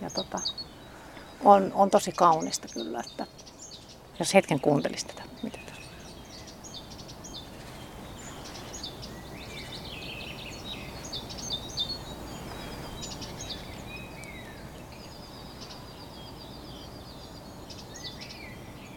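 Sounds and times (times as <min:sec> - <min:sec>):
several birds chirping and warbling outdoors: 0:00.0 - 0:18.9
speech: 0:01.5 - 0:03.5, 0:04.2 - 0:05.6.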